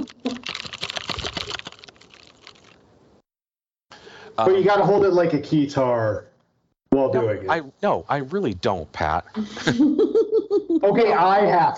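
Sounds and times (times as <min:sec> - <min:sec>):
rapid clicky typing on a mechanical keyboard: 0:00.0 - 0:02.7
speech: 0:04.4 - 0:06.3, 0:07.0 - 0:10.2, 0:10.8 - 0:11.7.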